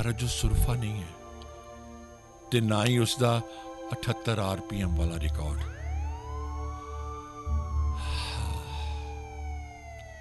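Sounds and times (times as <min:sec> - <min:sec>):
speech: 0:00.0 - 0:01.2, 0:02.5 - 0:05.8
police car siren wailing: 0:05.6 - 0:10.2.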